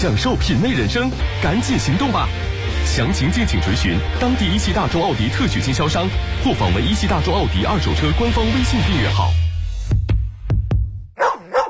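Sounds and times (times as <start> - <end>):
speech: 0.0 - 10.0
dog barking: 11.2 - 11.6.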